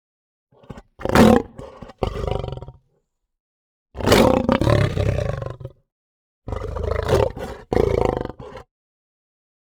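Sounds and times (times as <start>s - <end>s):
multiple lions snarling aggressively with pulsing growls: 0.6s - 2.8s, 4.0s - 5.7s, 6.5s - 8.7s.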